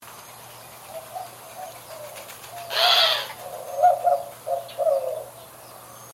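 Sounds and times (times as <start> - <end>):
bird giving short low hooted notes: 0.9 - 5.5.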